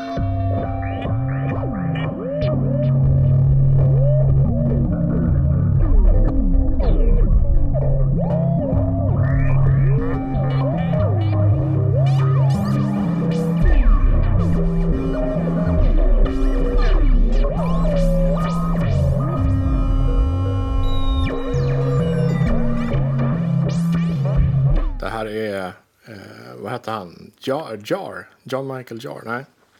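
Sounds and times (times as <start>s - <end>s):
electronic synthesizer music generated by a mushroom: 0.0s - 25.3s
speech: 26.8s - 29.6s.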